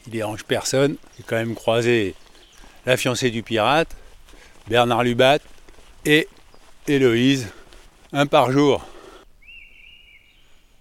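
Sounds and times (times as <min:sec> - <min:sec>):
speech: 0:00.1 - 0:02.2, 0:02.8 - 0:04.0, 0:04.7 - 0:08.9
mistle thrush whistled note: 0:09.4 - 0:10.6.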